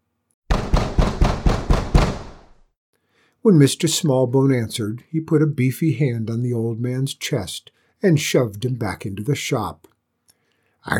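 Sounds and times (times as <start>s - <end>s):
man pounding on the wooden front door of a bookshop: 0.5s - 2.6s
speech: 3.4s - 9.9s.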